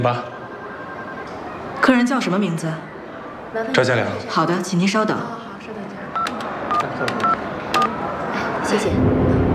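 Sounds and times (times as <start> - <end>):
speech: 0.0 - 0.4, 1.8 - 2.9, 3.5 - 6.2, 7.0 - 7.5, 8.7 - 9.4
touch-tone telephone keypad beeps dialing a hotel room: 6.2 - 8.0.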